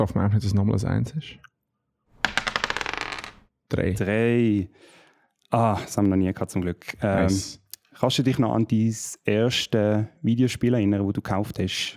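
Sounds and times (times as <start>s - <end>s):
speech: 0.0s - 1.5s, 3.7s - 11.9s
dice clattering across a tabletop: 2.2s - 3.4s.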